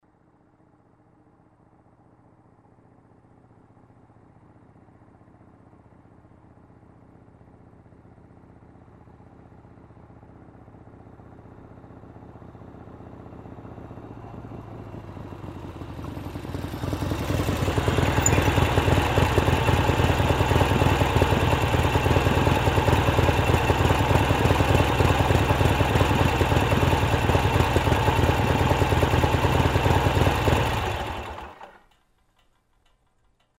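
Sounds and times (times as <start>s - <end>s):
Harley-Davidson motorcycle approaching, idling and turning off: 0.1s - 33.5s.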